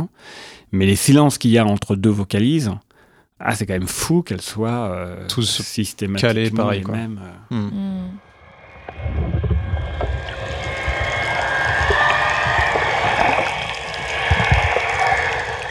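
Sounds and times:
speech: 0:00.1 - 0:02.8, 0:03.4 - 0:08.3, 0:09.0 - 0:09.5
faint tonal streaks: 0:08.2 - 0:15.6
steady underwater broadband water noise: 0:08.2 - 0:15.6
low rumbling murmurs: 0:08.6 - 0:15.6.

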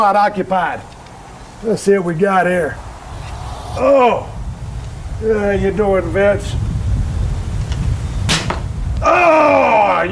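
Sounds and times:
speech: 0:00.0 - 0:01.0, 0:01.6 - 0:02.9, 0:03.7 - 0:04.4, 0:05.2 - 0:06.7, 0:09.0 - 0:10.1
low rumble: 0:02.4 - 0:07.5
arrow whipping through the air: 0:02.6 - 0:05.2, 0:08.2 - 0:08.7
arrow striking a target with a sharp thwack: 0:08.3 - 0:08.7.

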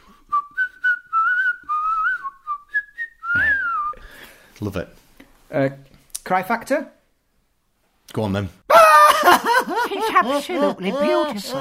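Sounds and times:
penny whistle playing a short lilting melody: 0:00.3 - 0:04.0
speech: 0:04.6 - 0:07.0, 0:08.1 - 0:08.6, 0:09.2 - 0:11.5
laughter: 0:08.7 - 0:11.5.

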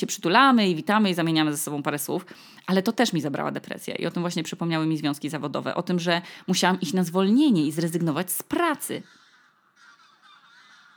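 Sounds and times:
speech: 0:00.0 - 0:09.2
geese honking in a dense overlapping chorus: 0:09.0 - 0:10.9.

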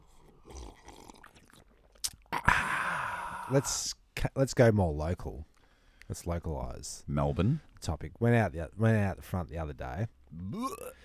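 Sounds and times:
slurping sip of hot instant coffee: 0:00.0 - 0:03.6
soft mouth clicks and lip noises: 0:00.4 - 0:02.5
speech: 0:03.5 - 0:05.5, 0:06.1 - 0:11.0.

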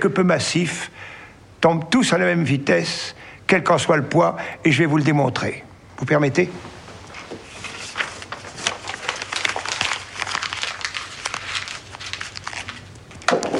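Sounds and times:
speech: 0:00.0 - 0:06.8
paper being crumpled into a ball: 0:06.6 - 0:13.5.

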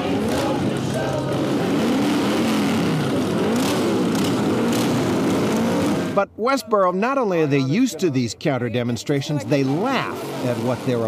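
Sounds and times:
several motorcycle engines revving and rumbling: 0:00.0 - 0:06.3, 0:09.4 - 0:11.0
crowd-like wash: 0:00.0 - 0:11.0
speech: 0:06.4 - 0:11.0.

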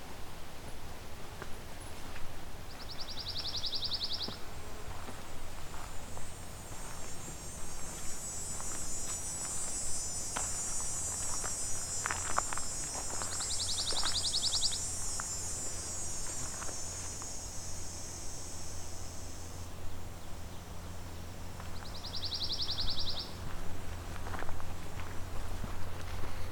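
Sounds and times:
rustling footsteps: 0:00.6 - 0:03.5, 0:04.2 - 0:17.4, 0:23.4 - 0:26.5
steady insect drone: 0:02.6 - 0:26.5
pine warbler soft trilled song: 0:02.7 - 0:04.4, 0:06.8 - 0:20.7, 0:21.7 - 0:23.4.

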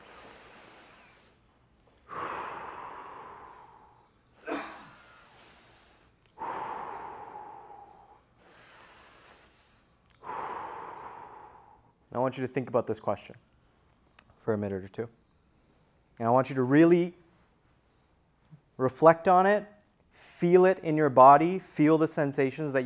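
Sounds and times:
person breathing deeply during a guided eyes-closed relaxation exercise: 0:00.0 - 0:01.4, 0:02.0 - 0:12.0
speech: 0:12.2 - 0:13.5, 0:14.5 - 0:15.2, 0:16.2 - 0:17.2, 0:18.8 - 0:22.8.

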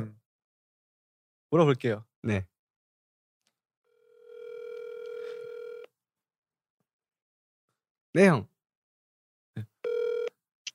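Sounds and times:
speech: 0:01.5 - 0:02.5, 0:08.2 - 0:08.5
long electronic phone ringback tone: 0:03.9 - 0:05.9, 0:09.8 - 0:10.4.

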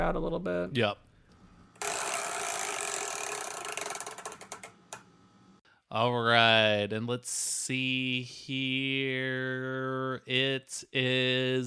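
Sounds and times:
speech: 0:00.0 - 0:01.0, 0:05.9 - 0:11.6
chore wheel spinning with ratcheting clicks: 0:01.8 - 0:04.7.

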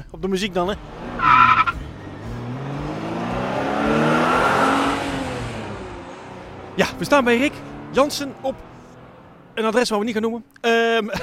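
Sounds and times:
speech: 0:00.1 - 0:01.4, 0:06.8 - 0:08.7, 0:09.6 - 0:11.2
car engine revving as the car accelerates away: 0:00.5 - 0:10.5
car tire squeal: 0:01.0 - 0:05.4
laughter: 0:11.0 - 0:11.2.

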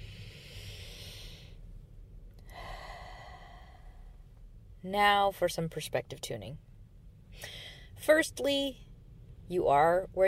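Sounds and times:
slow deep breath: 0:00.0 - 0:01.8, 0:02.4 - 0:04.4, 0:07.3 - 0:08.0
speech: 0:04.8 - 0:06.7, 0:07.4 - 0:08.9, 0:09.5 - 0:10.2.

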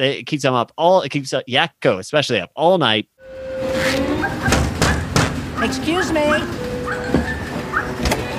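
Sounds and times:
speech: 0:00.0 - 0:04.3, 0:05.6 - 0:06.6
dog next door barking at night: 0:04.2 - 0:06.2, 0:06.8 - 0:08.0.

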